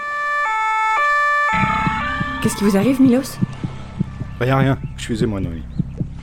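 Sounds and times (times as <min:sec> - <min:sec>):
loud two-tone police siren wailing: 0:00.0 - 0:03.7
speech: 0:02.4 - 0:03.5, 0:04.4 - 0:05.8.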